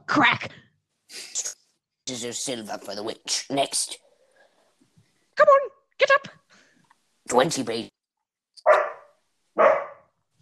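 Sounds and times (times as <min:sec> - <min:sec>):
speech: 0:00.2 - 0:00.6, 0:02.1 - 0:04.0, 0:07.3 - 0:08.0
dogs barking: 0:08.6 - 0:10.1.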